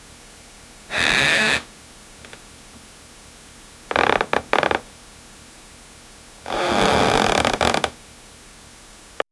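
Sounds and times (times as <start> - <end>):
bed creaking: 0.9 - 1.6, 3.9 - 4.8, 6.5 - 8.0.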